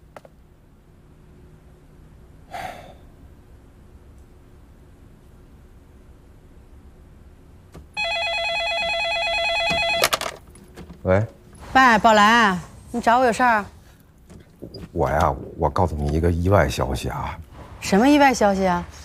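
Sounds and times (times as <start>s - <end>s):
faint low hum: 0.0s - 19.0s
telephone ringing as an outgoing call is placed: 8.0s - 10.4s
speech: 11.1s - 13.8s, 15.0s - 19.0s.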